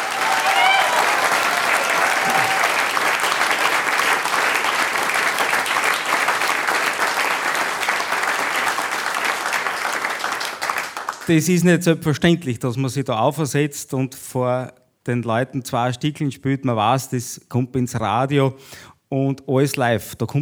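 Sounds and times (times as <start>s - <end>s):
faint whistle or cheer: 0.0s - 3.0s
live audience applause for a performer during a live radio recording: 0.0s - 11.3s
speech: 11.3s - 20.4s.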